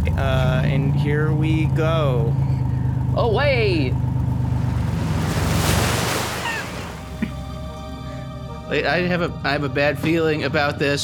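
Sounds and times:
car engine humming and surging as the vehicle pulls away: 0.0s - 7.8s
speech: 0.2s - 2.5s, 3.2s - 4.1s, 8.7s - 11.0s.

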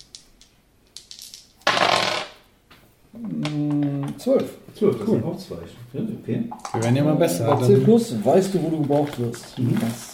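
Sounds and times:
dice being rolled for a Sharp check: 0.0s - 2.4s
speech: 4.2s - 10.1s.

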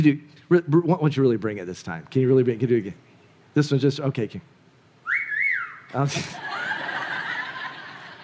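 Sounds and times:
speech: 0.0s - 4.6s, 5.9s - 6.5s
steady hiss of room noise: 0.0s - 8.2s
woman whistling a two-part call to call children in: 5.0s - 5.9s
laughter: 6.1s - 8.2s.

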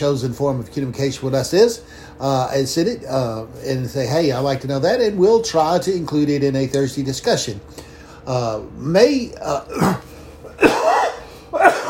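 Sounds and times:
speech: 0.0s - 10.8s
person coughing: 9.7s - 11.8s
throat clearing: 9.7s - 11.8s.

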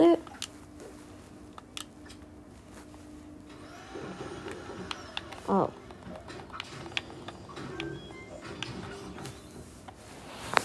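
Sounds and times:
vacuum cleaner sucking up a spider: 3.4s - 10.6s
speech: 5.5s - 5.8s.

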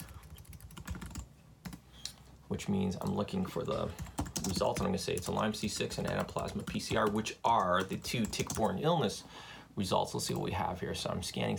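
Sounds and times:
rapid keystrokes on a computer keyboard: 0.0s - 1.8s, 3.7s - 8.7s
speech: 2.5s - 11.5s.

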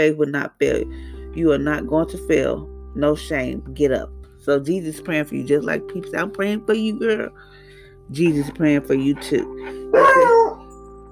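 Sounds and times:
speech: 0.0s - 10.4s
dog barking with a yelping falling pitch: 9.4s - 10.6s.

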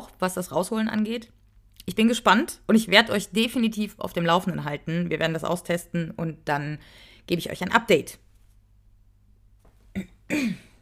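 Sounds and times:
speech: 0.2s - 8.2s, 10.0s - 10.7s
person clearing throat: 9.9s - 10.8s
person coughing: 10.0s - 10.8s.

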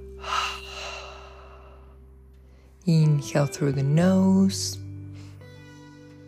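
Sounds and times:
low hum: 0.0s - 3.0s
slow exhale through the mouth during guided meditation: 0.2s - 2.0s
speech: 2.8s - 4.8s.

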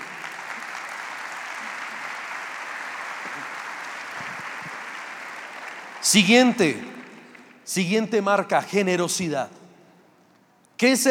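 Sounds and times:
large gathering applauding: 0.0s - 7.7s
speech: 6.0s - 6.9s, 7.7s - 9.6s, 10.8s - 11.1s.

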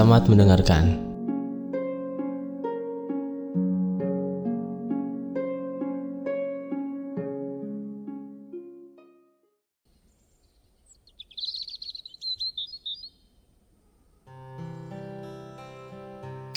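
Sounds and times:
speech: 0.0s - 1.0s
gentle music: 0.0s - 9.6s, 14.3s - 16.5s
birds chirping and tweeting in the morning: 10.0s - 14.3s.

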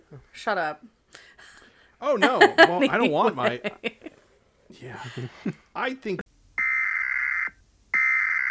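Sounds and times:
speech: 0.1s - 1.3s, 2.0s - 4.0s, 4.7s - 6.2s
laughter: 2.2s - 4.2s, 4.8s - 6.2s
long censor beep: 6.6s - 7.4s, 8.0s - 8.4s.

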